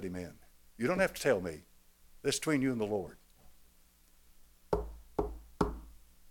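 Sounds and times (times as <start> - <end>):
speech: 0.0 - 3.2
firm knocks on a door: 4.8 - 5.9.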